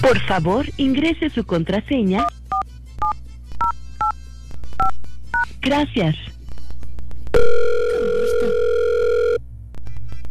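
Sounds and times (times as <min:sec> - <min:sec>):
speech: 0:00.0 - 0:02.4, 0:05.6 - 0:06.3
low steady hum: 0:00.0 - 0:10.2
telephone dialing tones during a call to an automated line: 0:07.4 - 0:09.4.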